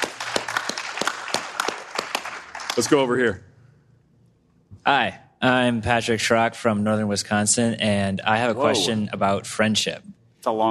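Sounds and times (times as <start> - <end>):
audience applause: 0.0 - 3.0
speech: 2.8 - 3.5, 4.8 - 10.6.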